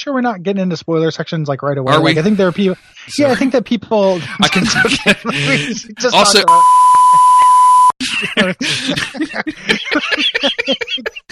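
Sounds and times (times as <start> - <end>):
speech: 0.0 - 7.4, 8.0 - 11.2
people talking quickly: 0.0 - 11.2
laughter: 1.9 - 11.2
censor bleep tone: 6.4 - 8.0.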